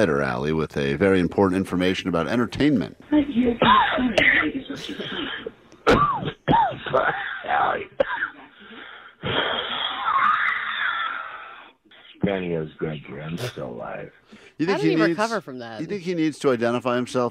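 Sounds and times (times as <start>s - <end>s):
speech: 0.0s - 6.0s, 12.3s - 17.3s
person coughing and wheezing over a muffled phone line: 3.6s - 10.3s.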